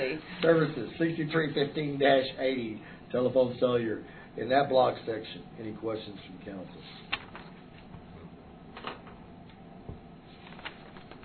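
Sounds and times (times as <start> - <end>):
speech: 0.1 - 7.1
council members turning document pages during a council meeting: 7.0 - 7.9, 10.3 - 11.2.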